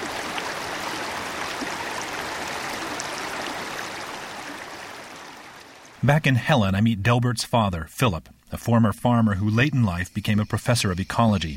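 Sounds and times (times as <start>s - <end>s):
mountain stream flowing: 0.0s - 6.5s
speech: 6.0s - 11.5s.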